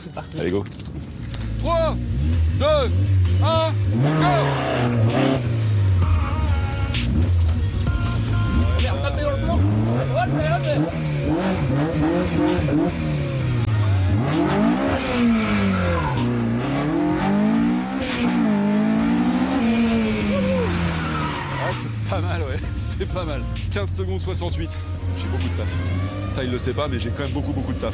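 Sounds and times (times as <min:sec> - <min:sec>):
speech: 0:00.0 - 0:01.0, 0:01.6 - 0:05.5, 0:10.3 - 0:13.1, 0:14.4 - 0:16.4, 0:21.7 - 0:27.9
McLaren sports car accelerating through a cone slalom: 0:01.1 - 0:27.9
tire squeal: 0:04.0 - 0:05.5, 0:14.3 - 0:18.6, 0:19.2 - 0:22.1.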